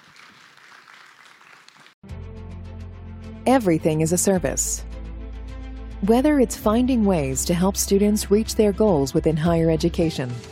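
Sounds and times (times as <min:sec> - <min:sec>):
audience clapping: 0:00.0 - 0:02.0
speech: 0:03.4 - 0:04.9, 0:06.1 - 0:10.5.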